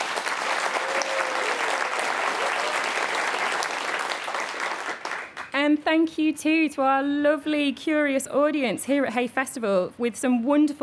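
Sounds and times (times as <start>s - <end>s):
audience applause for a panel in a tent: 0.0s - 5.6s
speech: 5.7s - 10.8s.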